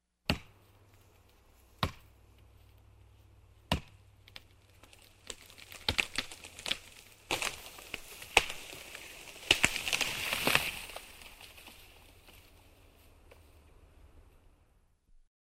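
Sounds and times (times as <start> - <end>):
axe chopping a small tree: 0.2 - 0.6, 1.8 - 2.2, 3.6 - 11.2
small tree falling: 3.6 - 13.7.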